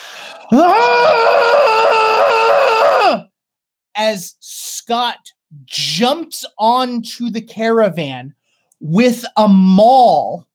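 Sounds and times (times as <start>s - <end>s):
loud ferocious shrill scream: 0.0s - 3.3s
speech: 0.5s - 1.0s, 4.0s - 10.5s.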